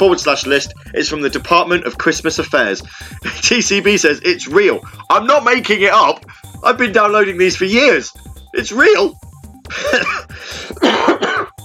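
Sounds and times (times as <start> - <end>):
speech: 0.0 - 11.2
person coughing: 9.7 - 11.6
person clearing throat: 9.8 - 11.6.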